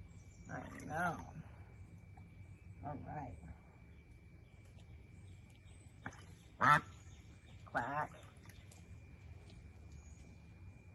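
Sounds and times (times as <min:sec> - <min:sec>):
faint steady hum: 0:00.0 - 0:10.9
speech: 0:00.5 - 0:01.5, 0:02.8 - 0:03.5, 0:06.6 - 0:06.9, 0:07.7 - 0:08.2
duck quacking: 0:06.6 - 0:06.9.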